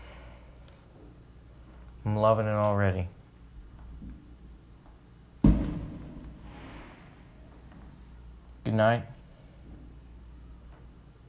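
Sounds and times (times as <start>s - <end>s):
low steady outdoor rumble: 0.0s - 11.2s
speech: 2.0s - 3.2s, 8.8s - 9.2s
deep boom from a distant firework with rumbling echo: 5.4s - 7.5s.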